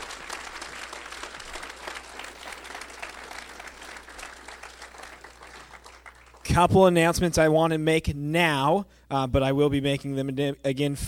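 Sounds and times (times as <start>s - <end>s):
sizable crowd applauding debate candidates: 0.0s - 6.6s
speech: 6.6s - 11.0s.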